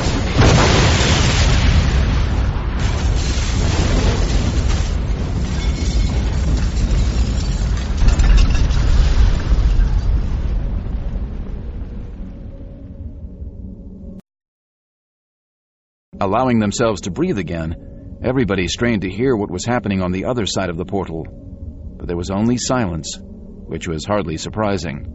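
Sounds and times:
explosion set off by a detonator switch beyond a closing blast door: 0:00.0 - 0:12.3
speech: 0:16.2 - 0:21.5, 0:22.1 - 0:25.1.

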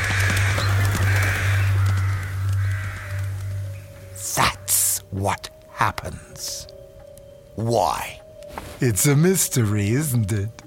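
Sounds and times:
flock of rooks cawing harshly: 0:00.0 - 0:05.1
speech: 0:05.1 - 0:06.7, 0:07.6 - 0:08.2, 0:08.8 - 0:10.6.

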